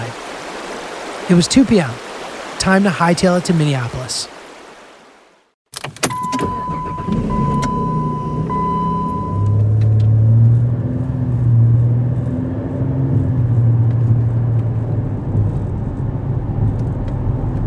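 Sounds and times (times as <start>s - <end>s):
car tire and road noise: 0.0s - 5.1s, 5.7s - 17.6s
speech: 1.3s - 4.4s
car engine droning on a road trip toward Minneapolis: 6.0s - 17.6s.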